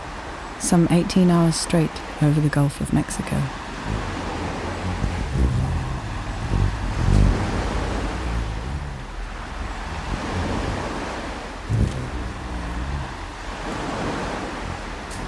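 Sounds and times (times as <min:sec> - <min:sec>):
blustery wind: 0:00.0 - 0:15.2
speech: 0:00.6 - 0:04.2
ocean surf roaring: 0:03.0 - 0:15.2
heavy low wind gusts buffeting the microphone: 0:03.4 - 0:15.2.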